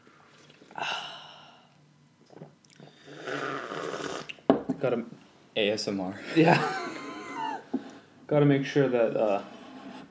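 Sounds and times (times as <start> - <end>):
person sipping a hot drink: 2.3 - 4.4
speech: 4.8 - 6.8, 8.3 - 9.6.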